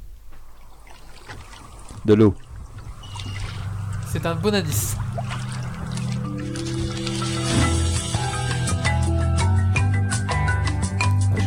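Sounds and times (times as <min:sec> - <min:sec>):
speech: 0:02.0 - 0:02.4, 0:04.1 - 0:05.0
video game music with melody and plucked accents: 0:04.1 - 0:11.4.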